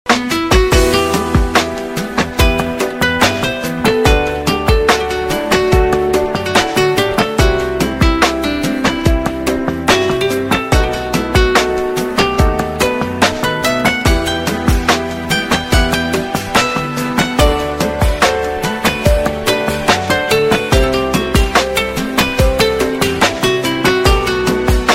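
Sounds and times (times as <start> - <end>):
Romanian guitar: 0.1 - 24.9.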